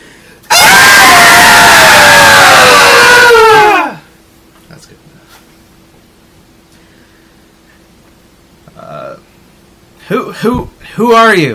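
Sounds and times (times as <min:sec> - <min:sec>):
several voices imitating women screaming high-pitched: 0:00.5 - 0:04.0
speech: 0:10.4 - 0:11.5.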